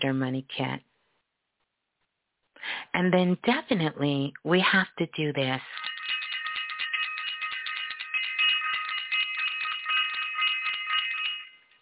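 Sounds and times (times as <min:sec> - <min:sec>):
speech: 0:00.0 - 0:00.9, 0:02.6 - 0:05.8
bright bell ringing rapidly: 0:05.7 - 0:11.8.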